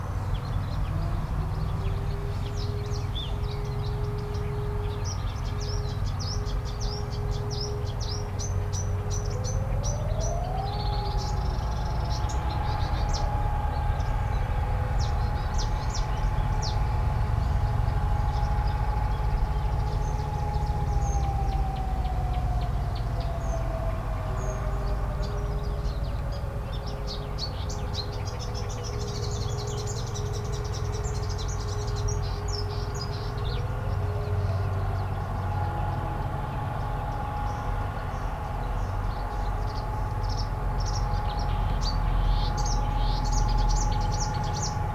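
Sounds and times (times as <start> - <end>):
ambience: 0.2 - 44.9.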